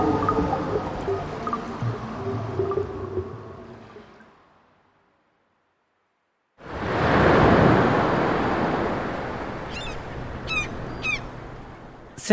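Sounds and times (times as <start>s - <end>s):
ocean waves: 0.0s - 5.4s, 6.6s - 12.3s
bird honks: 8.2s - 12.2s.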